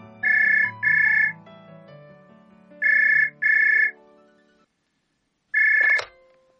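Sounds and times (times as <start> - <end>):
soft music: 0.0 - 6.5
telephone ringing with electronic trills: 0.2 - 1.4, 2.8 - 4.0, 5.6 - 6.2
phone pickup click: 5.6 - 6.2.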